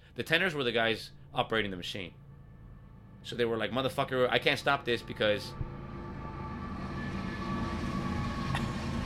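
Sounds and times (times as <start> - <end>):
faint metallic whine: 0.0 - 9.0
speech: 0.2 - 2.2, 3.2 - 5.6
train rumbling past outside: 2.1 - 9.0.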